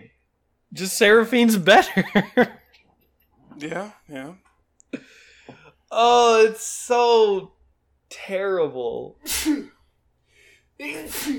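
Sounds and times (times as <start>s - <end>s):
speech: 0.7s - 2.6s, 3.6s - 5.2s, 5.9s - 9.8s, 10.8s - 11.3s
short breathy inhale: 5.0s - 5.8s, 10.2s - 10.8s
person sneezing: 9.2s - 9.8s, 10.8s - 11.3s.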